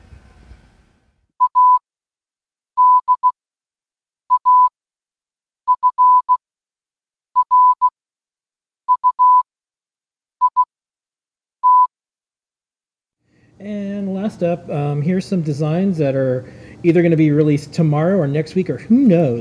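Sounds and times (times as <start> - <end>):
Morse code beeps sent over Bluetooth: 1.4 - 1.8, 2.8 - 3.4, 4.3 - 4.7, 5.7 - 6.4, 7.4 - 7.9, 8.9 - 9.5, 10.4 - 10.7, 11.6 - 11.9
speech: 13.6 - 19.3.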